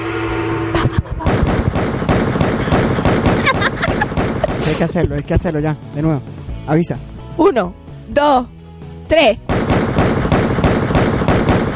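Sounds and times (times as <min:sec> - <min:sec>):
laughter: 0:00.8 - 0:01.4, 0:02.4 - 0:05.6
gunshot sound effects in a rapid volley: 0:01.2 - 0:04.9, 0:09.5 - 0:11.7
speech: 0:04.8 - 0:09.6.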